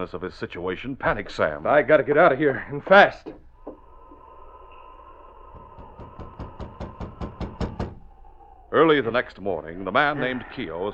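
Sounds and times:
speech: 0.0s - 3.4s, 8.8s - 10.9s
faint steady hum: 0.0s - 10.9s
rapid knocking on a wooden cabin door: 5.8s - 8.0s.

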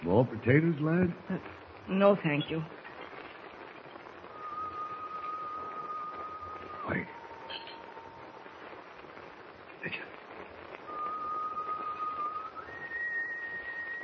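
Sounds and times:
steady rushing noise: 0.0s - 14.0s
speech: 0.1s - 2.8s
person on a ship's deck whistling a slow tune: 4.3s - 7.8s, 10.9s - 14.0s.

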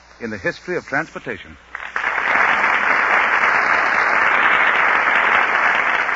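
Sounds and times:
speech: 0.2s - 1.8s
large studio audience applause: 1.7s - 6.1s.

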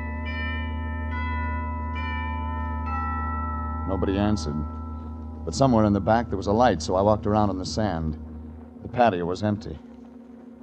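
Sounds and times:
house doorbell chiming in Santa Monica: 0.0s - 8.2s
steady low hum: 0.0s - 10.6s
speech: 3.9s - 4.8s, 5.5s - 9.9s.

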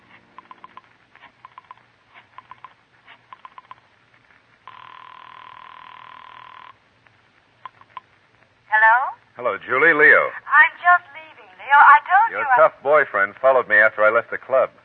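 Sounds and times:
steady telephone ringing tone on the line: 0.4s - 0.8s, 3.4s - 3.8s, 4.7s - 6.8s
speech: 9.4s - 11.1s, 11.8s - 14.8s.

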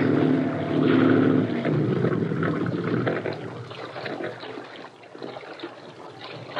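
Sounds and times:
water pump running aboard a boat: 0.0s - 6.5s.

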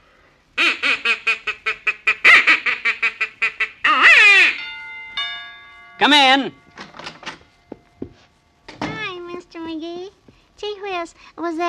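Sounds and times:
duck call imitating a quacking duck: 0.6s - 4.6s
speech: 6.0s - 6.6s, 11.0s - 11.6s.

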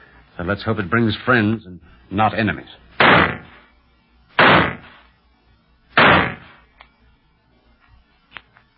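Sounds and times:
speech: 0.4s - 3.4s
signal gunshots fired from a gun: 3.0s - 3.6s, 4.4s - 5.0s, 6.0s - 6.6s.

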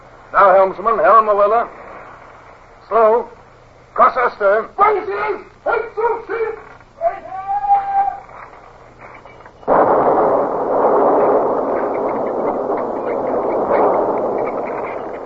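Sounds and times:
faint hum: 0.0s - 15.2s
speech: 0.3s - 1.8s, 2.9s - 3.4s, 4.0s - 7.4s
ship's cannon fire in a ship-to-ship engagement: 9.6s - 15.2s
rumbling roar of naval gunfire: 9.7s - 15.2s.

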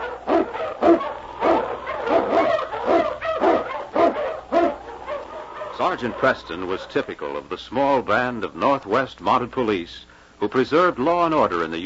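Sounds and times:
Eskimo sled lead dog barking and yipping: 0.0s - 7.1s
speech: 5.9s - 11.8s.

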